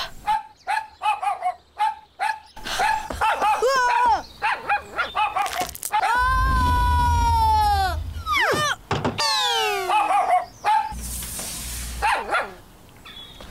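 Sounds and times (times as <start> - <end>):
dog barking in quick repeated bursts: 0.2 - 5.6, 9.8 - 11.0, 12.0 - 12.6
dog howling and whining with downward-sliding yelps: 6.0 - 10.5.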